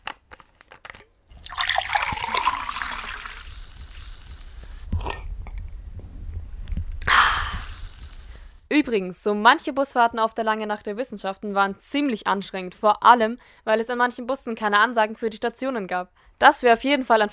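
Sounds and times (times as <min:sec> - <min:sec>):
short liquid burst: 0:01.3 - 0:05.3, 0:07.0 - 0:08.7
water pouring: 0:01.3 - 0:05.7, 0:07.0 - 0:08.6
person sipping and swallowing water: 0:01.3 - 0:08.6
speech: 0:08.7 - 0:17.3.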